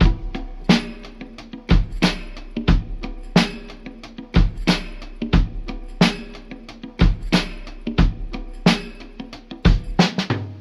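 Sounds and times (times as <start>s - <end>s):
boom bap drum loop with tom drums: 0.0s - 10.5s.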